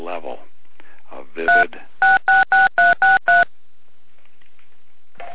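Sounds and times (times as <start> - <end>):
telephone keypad dialing tones in the background of a phone call: 1.5 - 3.5.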